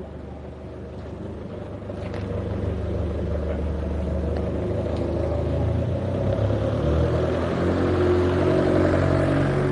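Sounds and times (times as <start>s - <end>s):
car engine rumbling on the street: 0.0s - 9.7s.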